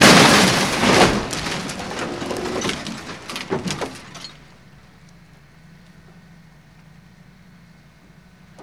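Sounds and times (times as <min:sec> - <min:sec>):
moderate vehicle impact crash: 0:00.0 - 0:05.3.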